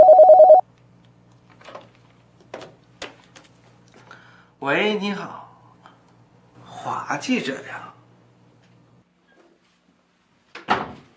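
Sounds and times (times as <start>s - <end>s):
telephone ringing with an incoming call: 0.0s - 0.6s
speech: 4.6s - 5.4s, 6.8s - 8.0s.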